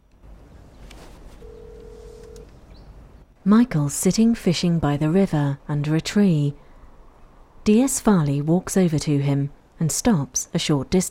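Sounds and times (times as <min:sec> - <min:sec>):
low hum: 0:00.0 - 0:11.0
steady electronic tone of a phone number being dialed in a car: 0:01.4 - 0:02.4
speech: 0:03.4 - 0:06.6, 0:07.7 - 0:11.0.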